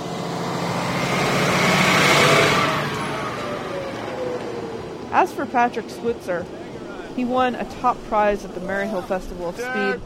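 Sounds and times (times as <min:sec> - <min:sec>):
broadband road noise: 0:00.0 - 0:10.0
bus engine rumbling on a hill road: 0:00.0 - 0:10.0
speech: 0:05.2 - 0:06.6, 0:07.2 - 0:10.0.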